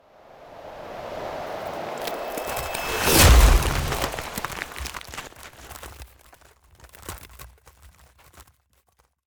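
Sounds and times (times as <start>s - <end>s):
icy slash ice spell damage: 0.3s - 6.3s.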